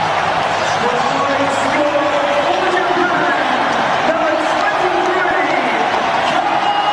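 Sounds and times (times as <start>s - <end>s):
huge stadium crowd roaring at a rugby match: 0.0s - 6.9s.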